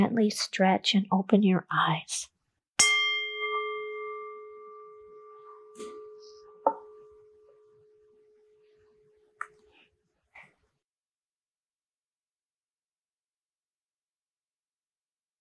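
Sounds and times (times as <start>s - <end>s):
speech: 0.0s - 2.9s
meditation bell ringing: 2.8s - 9.2s.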